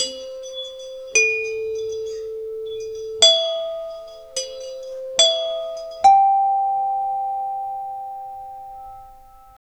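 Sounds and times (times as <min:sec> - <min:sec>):
tropical steelpan melody: 0:00.0 - 0:09.6.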